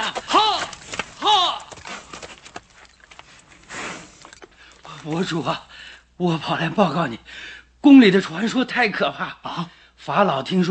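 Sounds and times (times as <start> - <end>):
horse hooves galloping: 0.0 - 5.4
speech: 5.0 - 10.6.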